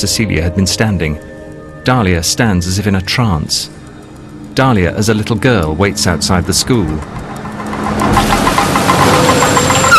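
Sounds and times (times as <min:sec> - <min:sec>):
speech: 0:00.0 - 0:03.9, 0:04.6 - 0:08.0
car engine rumbling as a car pulls up outside a school: 0:04.1 - 0:09.9.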